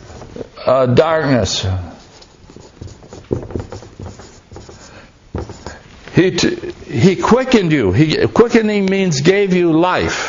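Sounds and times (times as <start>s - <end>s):
writing during a Bible lesson: 0.0s - 0.5s, 2.0s - 6.1s
speech: 0.6s - 1.9s, 6.2s - 10.2s.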